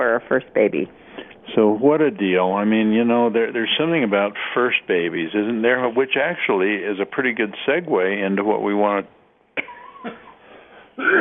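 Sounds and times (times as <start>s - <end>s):
speech: 0.2s - 9.2s, 10.0s - 10.2s
person coughing: 9.6s - 10.4s, 11.0s - 11.2s.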